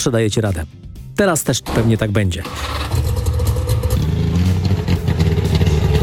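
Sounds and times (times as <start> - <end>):
speech: 0.0 - 3.0
clattering mechanical noise: 1.7 - 4.0
car engine running with slight revving: 1.7 - 6.0.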